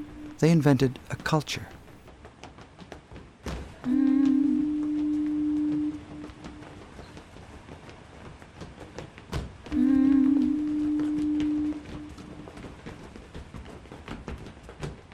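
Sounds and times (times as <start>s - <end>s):
speech: 0.4s - 1.7s
foghorn sounding long deep steady blasts: 3.9s - 6.7s, 9.7s - 12.3s.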